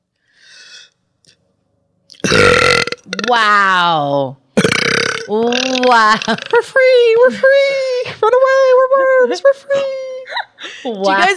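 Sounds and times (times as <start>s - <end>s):
faint raspy breath: 0.2s - 1.0s
loud drawn-out gurgling burp: 2.1s - 3.4s, 4.6s - 6.5s
speech: 3.2s - 4.4s, 5.3s - 11.3s.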